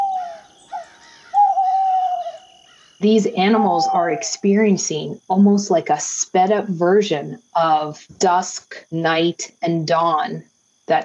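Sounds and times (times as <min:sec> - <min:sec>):
owls hooting: 0:00.0 - 0:04.8
speech: 0:03.0 - 0:11.0.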